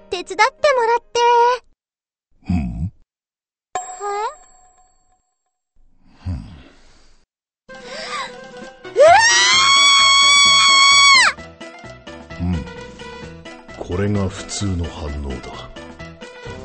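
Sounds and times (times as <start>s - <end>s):
speech: 0.2s - 1.7s, 14.1s - 15.8s
woman screaming high-pitched: 9.0s - 11.4s
woman's brief startled cry: 9.0s - 11.4s.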